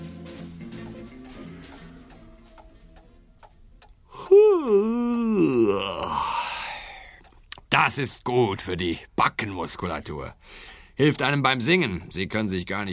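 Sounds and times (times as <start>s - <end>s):
quieter rhythmic ticking tonal sounds: 0.0s - 12.9s
loud drawn-out voiced yawn: 4.1s - 7.2s
speech: 7.8s - 12.9s.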